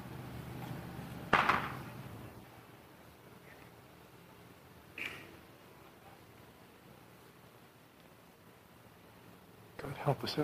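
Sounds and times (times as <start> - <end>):
low outdoor rumble: 0.0 - 10.4
construction workers' hammer strikes: 1.3 - 1.8
speech: 9.8 - 10.4.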